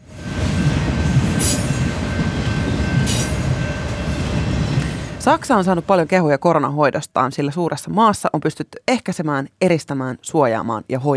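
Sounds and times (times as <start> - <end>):
train rumbling steadily along the rails: 0.0 - 6.4
speech: 5.3 - 11.1.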